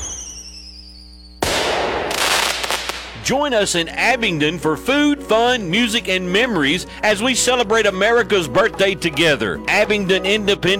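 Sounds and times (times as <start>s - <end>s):
rising whistle of fireworks at a Fourth of July celebration: 0.0s - 3.2s
speech: 3.3s - 10.7s.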